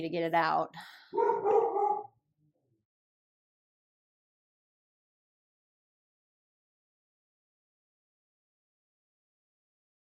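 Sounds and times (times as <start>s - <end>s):
speech: 0.0s - 1.6s
dog barking at the arriving mailman: 1.2s - 2.1s.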